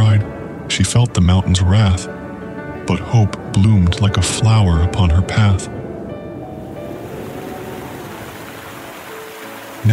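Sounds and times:
speech: 0.8 - 2.2, 2.9 - 5.8
raging river water rushing in full flood: 6.6 - 9.9.

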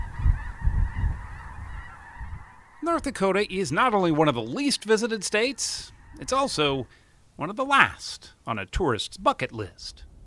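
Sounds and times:
flock of geese honking while flying overhead: 0.0 - 8.0
speech: 2.8 - 10.1.

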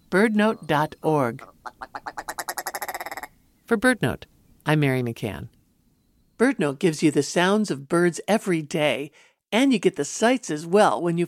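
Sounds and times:
speech: 0.1 - 2.0, 3.7 - 5.6, 6.4 - 11.2
Ptarmigan croaking rattle: 1.4 - 3.4.

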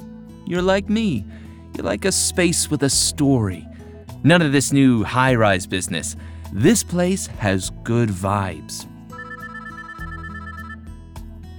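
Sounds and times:
speech: 0.5 - 8.9
mobile phone ringtone playing a bright looping electronic melody: 9.1 - 10.9.

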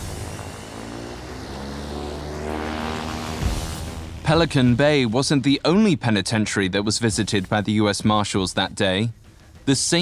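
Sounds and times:
propeller airplane engine droning: 0.0 - 5.6
speech: 4.3 - 9.9.

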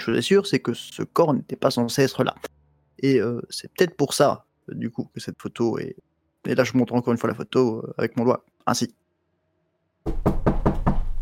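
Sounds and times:
speech: 0.0 - 9.0
loud solid knocking on a door: 10.1 - 11.2.

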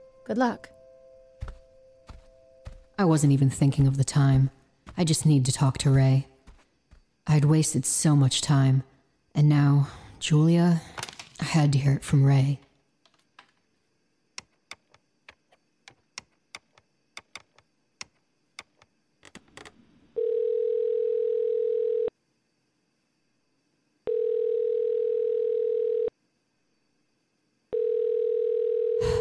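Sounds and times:
speech: 0.3 - 0.8, 3.0 - 6.3, 7.2 - 12.6
ringback tone of an outgoing telephone call: 20.2 - 22.1, 24.1 - 26.1, 27.7 - 29.1.

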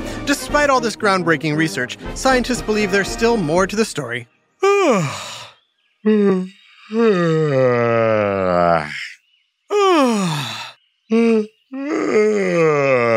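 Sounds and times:
speech: 0.3 - 5.3, 6.0 - 9.1
person yawning: 4.6 - 9.0, 9.7 - 13.1.

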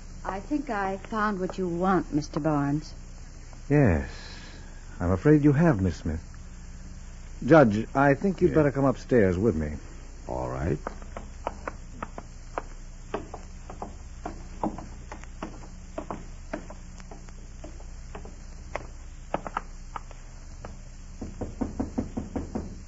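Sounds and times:
faint steady hiss: 0.0 - 22.8
speech: 0.2 - 3.0, 3.7 - 4.3, 5.0 - 6.3, 7.4 - 11.0
knocking on a door: 13.1 - 18.4, 20.6 - 22.8.

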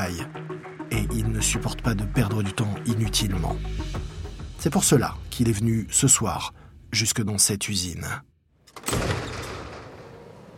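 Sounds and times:
speech: 0.0 - 9.1
door bursting open with a heavy clunk: 8.7 - 10.5.

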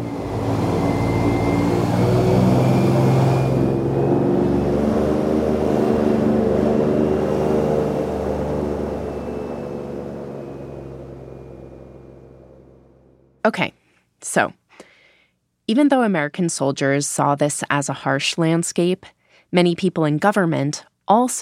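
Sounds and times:
fanboat engine revving with a deep droning hum: 0.0 - 13.4
speech: 13.5 - 13.7, 14.3 - 14.6, 15.7 - 21.4.

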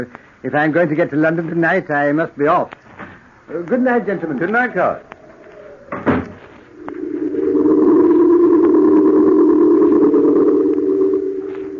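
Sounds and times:
speech: 0.0 - 2.8, 3.5 - 5.1
door shutting with a solid thud: 5.9 - 6.4
steady low droning tone: 6.5 - 11.7.

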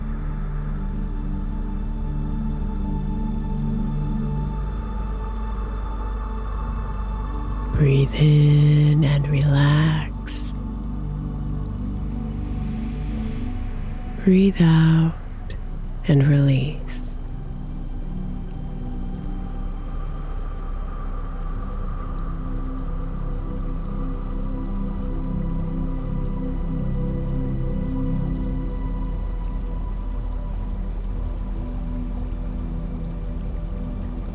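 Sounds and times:
water trickling with light splashes and drips: 0.0 - 34.3
speech: 7.9 - 10.4, 14.3 - 15.2, 16.1 - 16.9.

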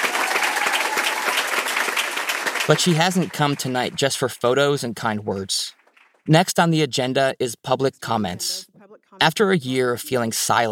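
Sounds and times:
room full of people clapping at a school district meeting: 0.0 - 4.3
speech: 2.7 - 10.7.

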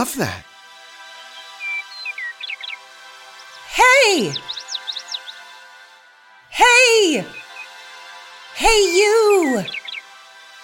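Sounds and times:
speech: 0.0 - 0.5, 3.8 - 4.5, 6.6 - 7.4, 8.6 - 9.8
person imitating a blue jay's call: 3.7 - 4.5, 8.6 - 9.8.

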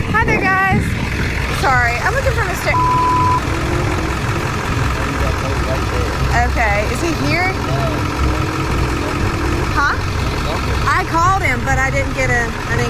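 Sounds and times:
pickup truck engine idling: 0.0 - 12.8
short beep: 2.7 - 3.5
speech: 9.8 - 12.8.

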